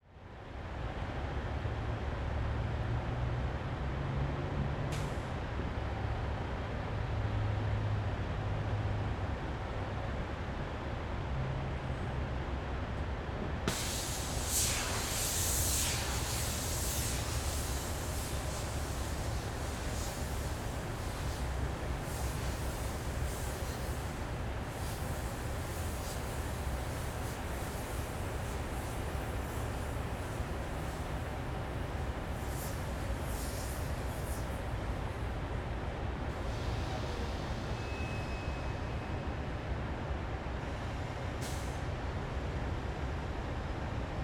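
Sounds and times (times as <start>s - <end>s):
traffic on a bridge above: 0.0s - 44.2s.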